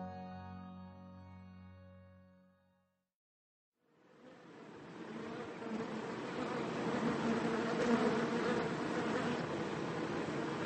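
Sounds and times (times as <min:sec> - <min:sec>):
swarm of honeybees buzzing: 0:04.0 - 0:10.6.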